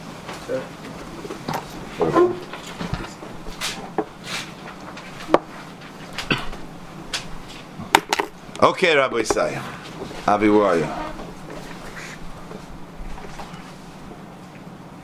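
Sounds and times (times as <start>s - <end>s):
speech: 0.5s - 1.0s, 2.0s - 2.4s, 8.6s - 11.0s
wooden chair being shifted with scrapes and knocks: 1.2s - 6.4s, 9.3s - 13.8s.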